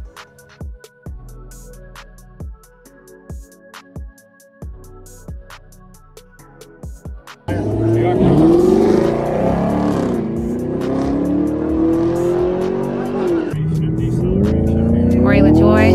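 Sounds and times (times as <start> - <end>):
rhythmic thumps: 6.8 - 15.9
NASCAR race car engine roar on the track inside a coliseum: 7.5 - 15.9.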